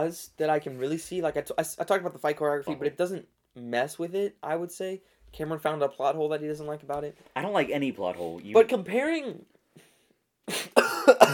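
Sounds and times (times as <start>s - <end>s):
speech: 0.0s - 9.5s
person coughing: 10.5s - 11.3s.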